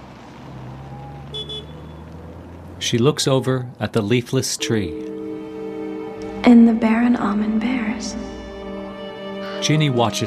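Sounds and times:
car engine humming as the car is driven off: 0.0s - 10.2s
short high car horn toots: 1.3s - 2.1s
speech: 2.8s - 5.1s, 6.4s - 8.4s, 9.6s - 10.2s.

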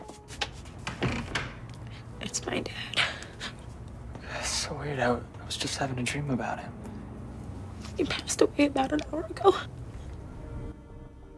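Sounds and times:
apartment door swinging shut with a soft thud: 0.4s - 1.7s
speech: 2.3s - 3.0s, 4.7s - 6.8s, 8.0s - 9.8s.

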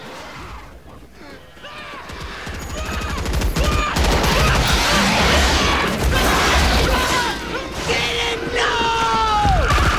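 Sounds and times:
people shouting: 1.2s - 9.9s
heavy gunfire from troops shooting at an attacking bug: 2.8s - 8.0s.

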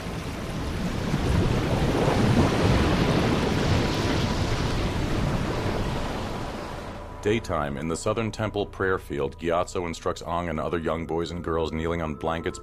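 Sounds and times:
ocean waves surging toward shore: 0.0s - 8.2s
speech: 7.2s - 12.6s.

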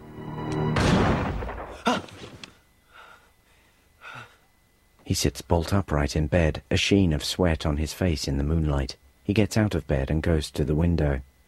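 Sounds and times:
sharp crack: 0.5s - 2.6s
rifle gunshot: 0.8s - 1.8s
speech: 5.1s - 11.3s.

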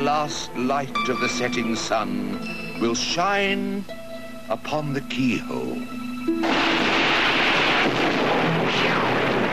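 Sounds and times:
speech: 0.1s - 6.8s
thunder rumbling in a mountain storm: 6.4s - 9.5s.

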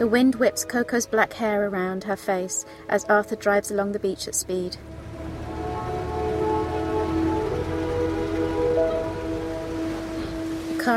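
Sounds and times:
speech: 0.0s - 5.0s
heavy rain falling on a parked car with its top up: 4.9s - 10.9s.

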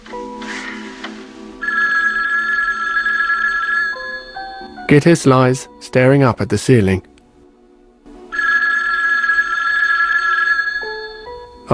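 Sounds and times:
telephone ringing electronically in a dark bedroom at night: 1.6s - 4.8s, 8.3s - 11.5s
speech: 4.9s - 7.1s.

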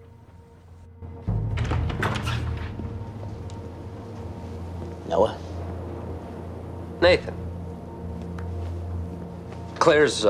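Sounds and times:
front door pulled open: 1.2s - 4.5s
speech: 5.1s - 5.4s, 7.0s - 7.4s, 9.8s - 10.2s.

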